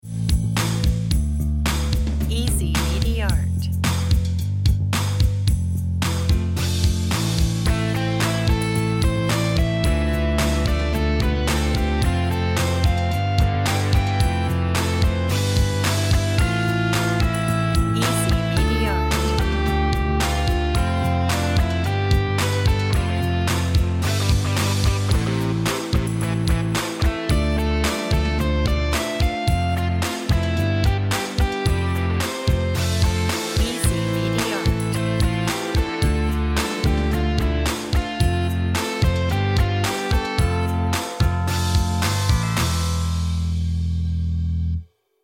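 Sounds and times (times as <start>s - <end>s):
guitar intro: 0.0s - 44.8s.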